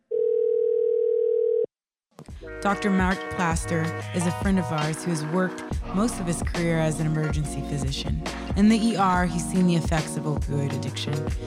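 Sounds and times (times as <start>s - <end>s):
telephone dial tone of an outgoing call: 0.1s - 1.7s
speech: 2.5s - 11.4s.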